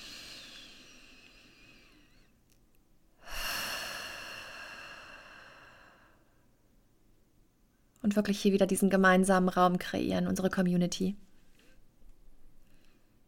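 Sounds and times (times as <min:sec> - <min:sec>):
deep breathing during a guided group breathing exercise: 0:00.0 - 0:02.4, 0:03.2 - 0:06.5
quiet steady hiss: 0:00.0 - 0:13.2
speech: 0:08.1 - 0:11.2.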